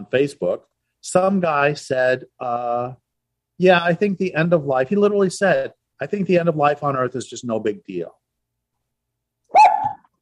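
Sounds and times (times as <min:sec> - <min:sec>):
speech: 0:00.0 - 0:03.0, 0:03.6 - 0:08.2
dog barking: 0:09.5 - 0:10.0.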